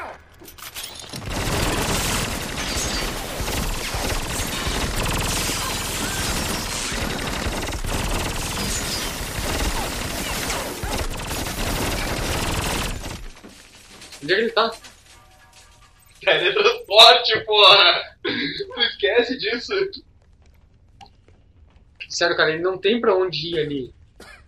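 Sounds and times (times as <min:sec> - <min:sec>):
automatic gunfire in a video game: 0:01.2 - 0:13.3
speech: 0:14.3 - 0:14.8, 0:16.3 - 0:18.1, 0:19.0 - 0:20.1, 0:22.2 - 0:23.9.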